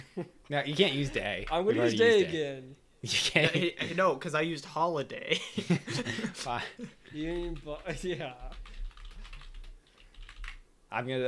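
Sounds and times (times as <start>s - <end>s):
speech: 0.2s - 8.6s, 10.9s - 11.2s
laughter: 3.1s - 4.0s, 5.3s - 7.1s
typing on a computer keyboard: 7.3s - 10.6s.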